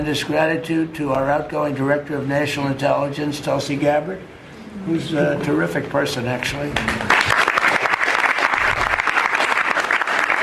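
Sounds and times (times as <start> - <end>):
speech: 0.0 - 7.1
room full of people clapping: 6.8 - 10.4.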